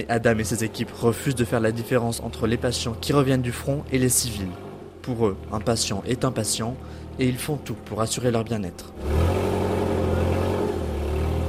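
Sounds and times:
speech: 0.0 - 9.5
bus engine rumble driving into the grounds of an airport: 0.0 - 11.4.

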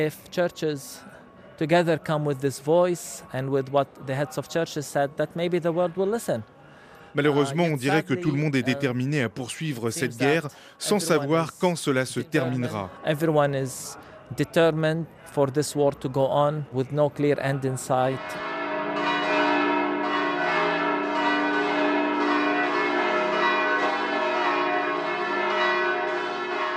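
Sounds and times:
speech: 0.0 - 18.5
Nativity basilica church bells ringing: 18.0 - 26.7.

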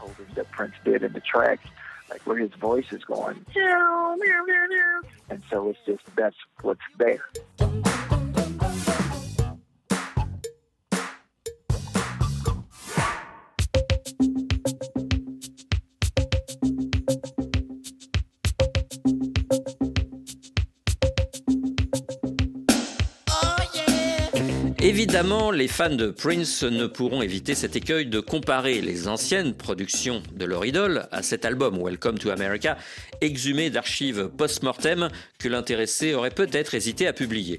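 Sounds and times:
speech: 0.2 - 8.0, 25.1 - 37.5
stacked sliding vocal lines singing in harmony: 7.3 - 9.3, 23.3 - 25.5
drums and a steady beat: 7.3 - 31.6, 32.2 - 37.5.

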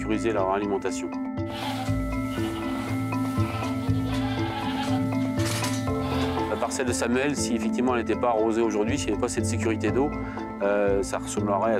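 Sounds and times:
speech: 0.1 - 1.8, 6.7 - 11.7
goats kept by goat farmers bleating: 1.5 - 7.0.

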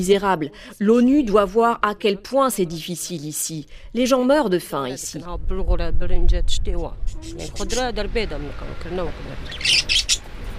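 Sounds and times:
speech: 0.0 - 10.3
birds chirping and calling inside a tent: 7.0 - 10.3.

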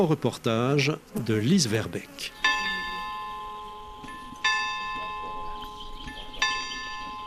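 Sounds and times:
speech: 0.0 - 2.5
church bells ringing the hour: 2.4 - 7.2.

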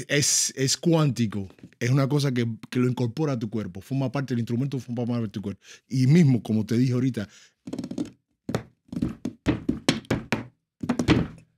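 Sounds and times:
speech: 0.0 - 7.9
knocking on a wooden table: 8.0 - 11.4.

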